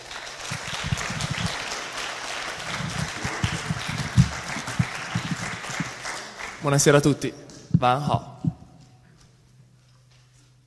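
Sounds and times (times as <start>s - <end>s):
crowd applauding: 0.0s - 7.2s
speech: 6.6s - 8.3s.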